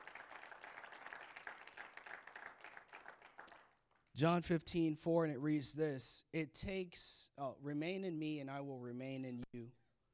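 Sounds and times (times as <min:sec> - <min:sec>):
crowd applauding: 0:00.0 - 0:04.1
speech: 0:04.2 - 0:09.8.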